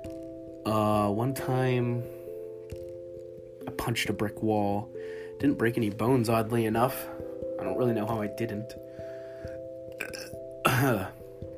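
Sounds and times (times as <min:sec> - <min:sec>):
speech: 0:00.7 - 0:02.8, 0:03.9 - 0:08.9, 0:10.8 - 0:11.2
faint throat noises: 0:09.9 - 0:11.2
loud gurgling burp: 0:09.9 - 0:11.2.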